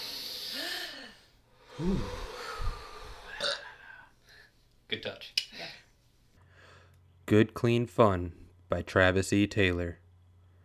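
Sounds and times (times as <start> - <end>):
deep breath taken before a reading: 0.0 - 4.6, 6.4 - 7.0
sighing voice tones: 1.7 - 3.6
speech: 1.8 - 2.2, 7.3 - 10.0.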